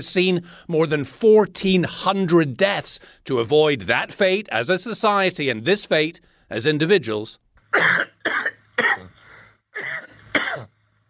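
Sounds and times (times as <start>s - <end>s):
speech: 0.0s - 9.1s, 9.8s - 10.7s
person coughing harshly: 7.8s - 10.7s.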